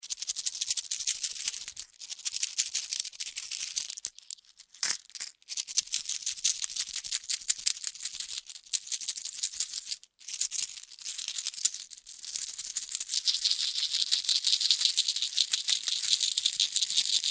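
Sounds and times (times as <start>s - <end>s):
many coins shaken in a hand: 0.8s - 9.9s, 10.6s - 17.3s.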